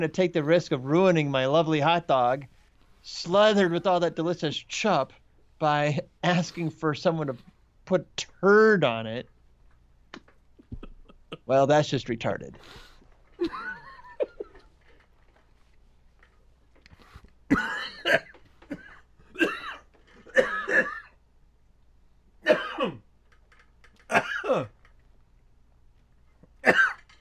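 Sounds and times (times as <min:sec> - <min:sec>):
speech: 0:00.0 - 0:09.3, 0:11.4 - 0:13.7, 0:17.5 - 0:18.3, 0:24.1 - 0:24.8, 0:26.6 - 0:27.0
person coughing and choking on a ham sandwich: 0:17.5 - 0:21.2, 0:22.4 - 0:23.1, 0:24.1 - 0:24.8, 0:26.6 - 0:27.1.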